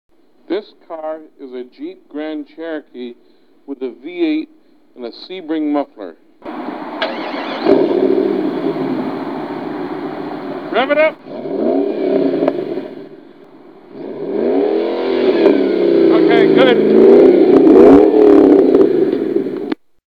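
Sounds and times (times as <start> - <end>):
Jeep V8 engine: 6.4 - 19.8.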